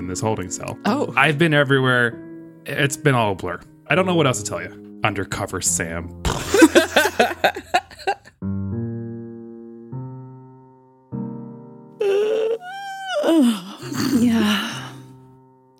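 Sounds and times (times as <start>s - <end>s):
speech: 0.0s - 7.7s
laughter: 6.4s - 8.3s
long yawn: 12.0s - 15.1s.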